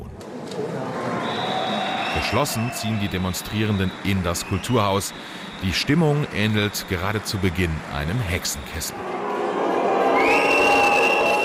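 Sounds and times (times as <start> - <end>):
dense loud indoor protesting crowd booing: 0.3 - 11.4
long sustained shrill whistle: 1.2 - 7.2, 10.1 - 11.4
speech: 2.2 - 9.3.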